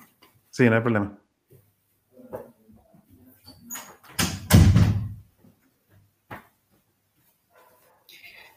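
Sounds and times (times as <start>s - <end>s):
speech: 0.6s - 1.2s
door creaking shut with a solid thump: 3.5s - 5.2s.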